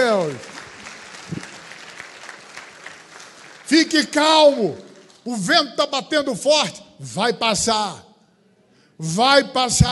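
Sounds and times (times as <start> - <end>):
church congregation applauding in a Methodist cathedral: 0.0 - 5.8
speech: 0.1 - 0.6, 3.9 - 8.1, 9.0 - 9.9.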